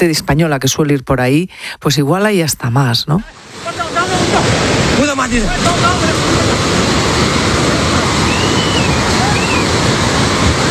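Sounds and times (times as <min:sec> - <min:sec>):
speech: 0:00.0 - 0:06.4
rushing floodwater sweeping away buses and buildings: 0:03.3 - 0:10.6.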